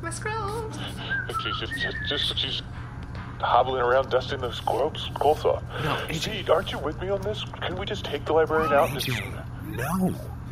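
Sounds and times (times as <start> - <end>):
steady low hum: 0.0 - 10.4
speech: 0.1 - 10.4
person whistling a short wandering tune with sliding notes: 0.8 - 2.6.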